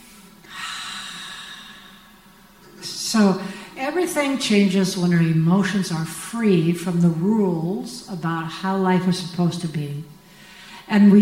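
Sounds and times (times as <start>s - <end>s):
person breathing in deeply: 0.4s - 2.2s, 10.3s - 10.9s
speech: 3.1s - 10.1s, 10.9s - 11.1s.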